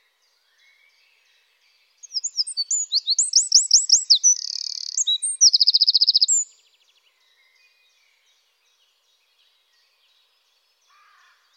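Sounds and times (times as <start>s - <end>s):
Eurasian wren singing with whistled notes, buzzy trill and metallic rattle: 2.0s - 6.6s.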